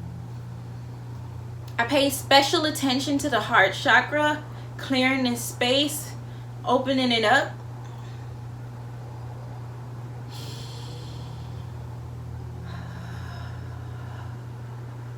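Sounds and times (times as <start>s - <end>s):
steady low electrical hum: 0.0s - 15.1s
speech: 1.8s - 7.6s
deep breathing in and out during a sage-smudging meditation: 10.3s - 15.1s.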